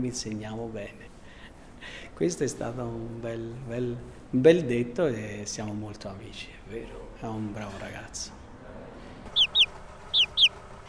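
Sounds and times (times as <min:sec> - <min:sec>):
speech: 0:00.0 - 0:01.1, 0:01.8 - 0:08.4
young chicken chicks cheeping: 0:09.3 - 0:10.6.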